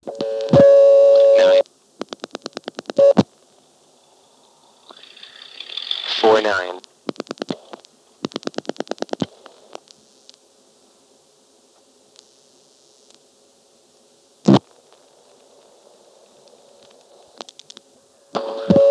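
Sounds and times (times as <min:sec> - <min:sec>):
quiet telephone line hum: 0:00.0 - 0:18.8
rapid rotary-dial pulses: 0:04.8 - 0:06.4.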